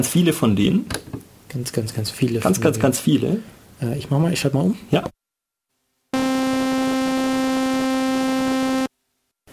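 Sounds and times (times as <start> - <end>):
speech: 0.0 - 5.2
buzzy low synthesizer sine wave tone: 6.2 - 8.9.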